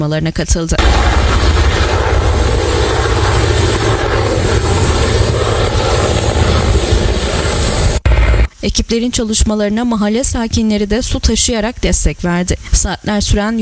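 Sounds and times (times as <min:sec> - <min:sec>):
speech: 0:00.0 - 0:02.0, 0:08.6 - 0:13.6
helicopters dropping water on a wildfire: 0:00.8 - 0:08.5.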